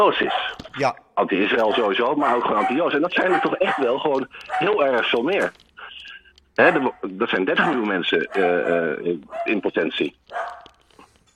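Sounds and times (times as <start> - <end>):
pet dog barking: 0.0 - 0.7, 1.5 - 5.5, 6.6 - 10.8
speech: 0.0 - 5.7, 6.6 - 10.6.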